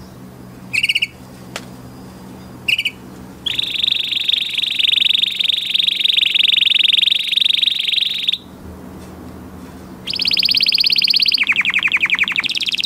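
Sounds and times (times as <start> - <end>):
canary singing a fast rattling trill: 0.7 - 1.2, 2.7 - 8.4, 10.0 - 12.8.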